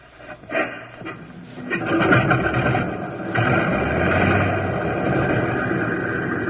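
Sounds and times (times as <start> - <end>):
propeller aircraft engine coughing and sputtering into life: 0.5 - 6.4.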